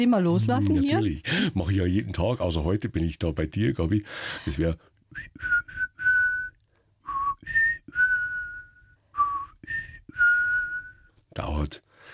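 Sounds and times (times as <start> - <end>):
speech: 0.0 - 5.6, 11.4 - 11.8
person whistling a call to forest birds, squirrels and jays: 5.2 - 11.1.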